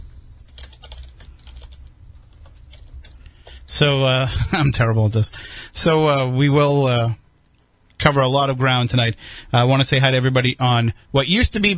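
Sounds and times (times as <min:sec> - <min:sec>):
typing on a computer keyboard: 0:00.4 - 0:03.6
speech: 0:03.7 - 0:07.2, 0:08.0 - 0:11.7.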